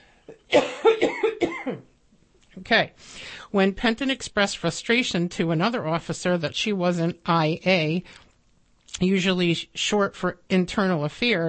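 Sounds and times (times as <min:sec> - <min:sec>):
person coughing: 0:00.3 - 0:01.9
speech: 0:02.7 - 0:08.2, 0:08.9 - 0:11.4.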